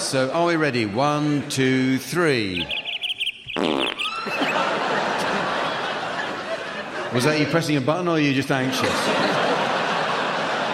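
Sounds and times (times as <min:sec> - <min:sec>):
speech: 0:00.1 - 0:02.8, 0:03.6 - 0:04.6, 0:07.1 - 0:09.6
loud buzzy fart sound: 0:03.5 - 0:04.2
laughter: 0:03.8 - 0:10.7.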